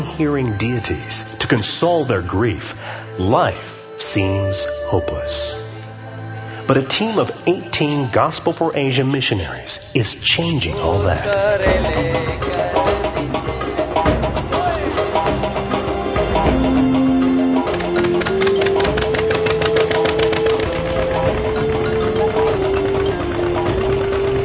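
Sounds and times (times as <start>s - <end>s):
speech: 0.2s - 5.6s, 6.7s - 13.4s
boat engine running while travelling between islands on waterways: 10.7s - 24.4s.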